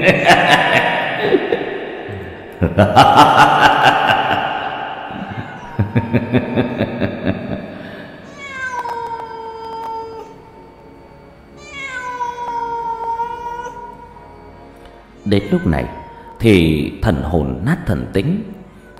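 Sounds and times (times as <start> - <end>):
laughter: 0.0 - 8.2
speech: 2.6 - 3.7, 6.0 - 7.5, 15.3 - 18.5
cat meowing: 5.2 - 6.2, 8.2 - 10.5, 11.6 - 14.2, 15.2 - 16.4.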